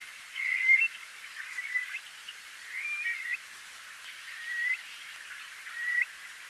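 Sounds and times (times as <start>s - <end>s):
Stone curlew Burhinus oedicnemus high-frequency whistling and strangled calls: 0.4s - 0.9s, 2.7s - 3.4s, 4.3s - 4.8s, 5.7s - 6.1s.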